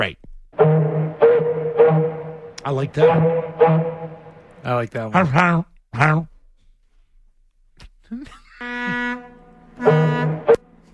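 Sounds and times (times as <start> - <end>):
speech: 0.0 - 0.7, 2.6 - 4.0, 4.6 - 6.3, 8.1 - 8.4
ferry horn blasting as the ferry pulls away from port: 0.6 - 4.7, 8.6 - 10.9.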